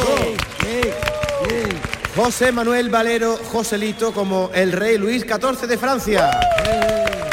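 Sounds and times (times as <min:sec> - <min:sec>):
small group clapping: 0:00.0 - 0:02.9, 0:06.0 - 0:07.3
speech: 0:02.2 - 0:07.0.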